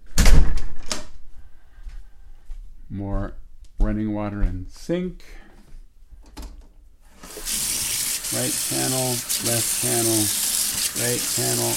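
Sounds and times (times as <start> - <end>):
door slamming shut: 0.1 - 1.0
speech: 2.9 - 5.4, 8.3 - 10.4, 11.0 - 11.7.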